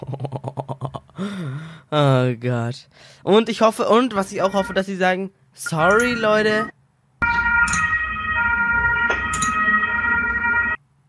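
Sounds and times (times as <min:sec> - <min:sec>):
speech: 0:00.0 - 0:00.3, 0:01.2 - 0:06.8
ambulance siren sound effect: 0:04.4 - 0:04.8, 0:06.0 - 0:10.8.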